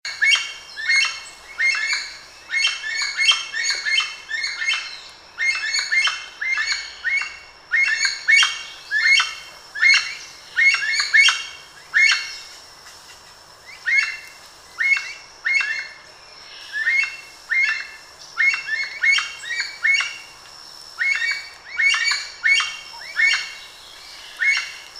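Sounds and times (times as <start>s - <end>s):
aracari calling: 0.1s - 24.9s.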